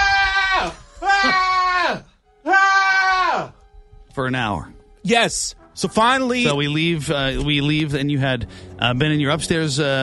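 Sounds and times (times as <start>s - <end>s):
person imitating anguished screaming like giving birth: 0.0s - 3.5s
speech: 4.2s - 10.0s.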